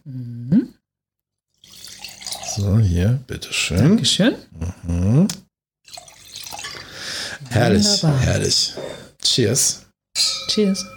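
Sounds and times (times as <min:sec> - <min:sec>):
softer splashy trickle of red wine: 0:01.6 - 0:02.6, 0:05.9 - 0:06.8
red wine blending Cabernet Sauvignon, Grenache and Syrah poured into a glass: 0:01.6 - 0:03.0, 0:05.9 - 0:08.0
speech: 0:02.6 - 0:05.4, 0:07.8 - 0:10.9.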